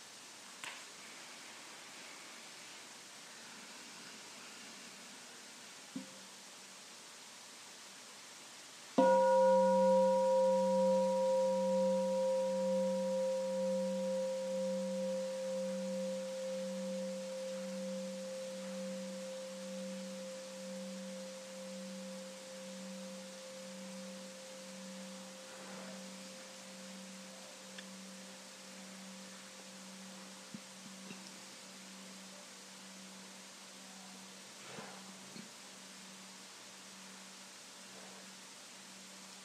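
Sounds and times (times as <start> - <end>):
bell struck and ringing: 9.0 - 29.0.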